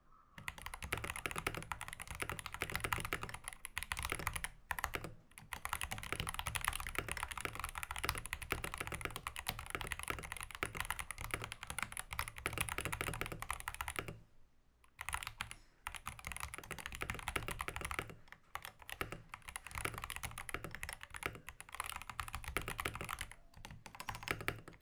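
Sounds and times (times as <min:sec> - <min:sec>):
typing on an optical keyboard: 0:00.4 - 0:14.2, 0:14.9 - 0:24.8.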